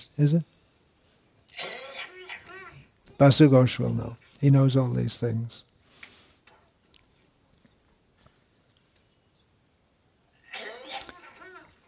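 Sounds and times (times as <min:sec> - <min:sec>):
speech: 0:00.0 - 0:00.5, 0:03.2 - 0:05.7
person coughing: 0:01.5 - 0:02.7, 0:10.4 - 0:11.2.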